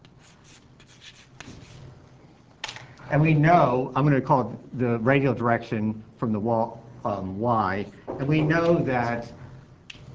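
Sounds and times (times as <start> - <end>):
scratchy strokes of a shear profile being drawn on a board: 0.0 - 2.0
speech: 3.1 - 9.4.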